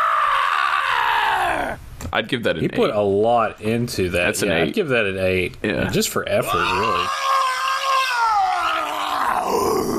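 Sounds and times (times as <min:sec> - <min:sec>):
person performing a loud growling roar: 0:00.0 - 0:01.8, 0:06.5 - 0:09.9
speech: 0:02.1 - 0:07.2.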